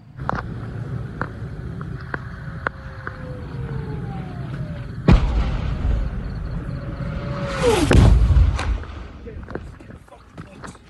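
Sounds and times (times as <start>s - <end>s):
rumble: 0.0s - 10.8s
rushing roar and boom of second rocket strike: 0.2s - 9.6s
falling whistles of incoming rockets near Sderot: 2.5s - 9.1s
heavy blast of rocket strike near Sderot: 4.8s - 9.6s.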